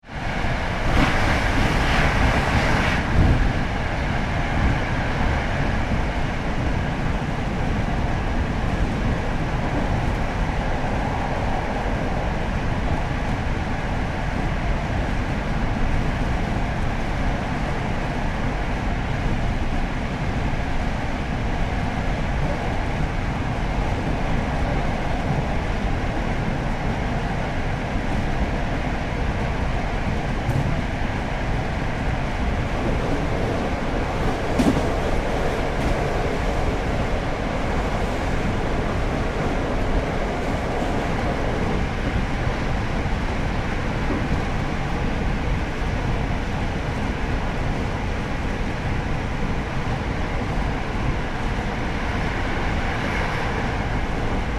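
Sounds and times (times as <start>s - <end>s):
electric train interior at high speed: 0.0s - 54.5s.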